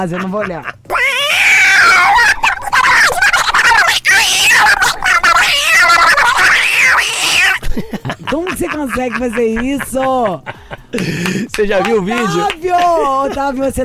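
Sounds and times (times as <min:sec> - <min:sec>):
speech: 0:00.0 - 0:00.8, 0:07.8 - 0:13.8
laughter: 0:00.0 - 0:13.8
human voice imitating a cat fighting a dog: 0:00.6 - 0:07.6, 0:11.8 - 0:12.6.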